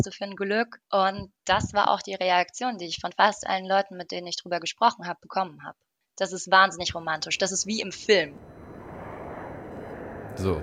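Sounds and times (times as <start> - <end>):
speech: 0.0 - 8.6, 10.4 - 10.6
airplane engines roaring while landing: 8.0 - 10.6.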